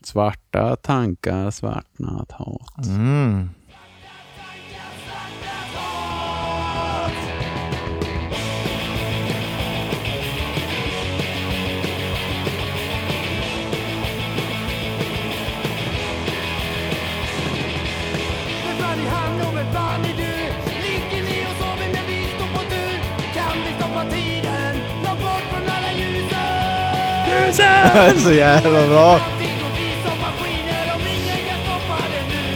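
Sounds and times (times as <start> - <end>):
speech: 0.0 - 3.6, 27.5 - 29.3
male singer shouting and yelling: 2.7 - 3.6, 26.4 - 29.8
loud distorted rock song with guitars and drums: 3.8 - 32.5
laughter: 27.1 - 29.4.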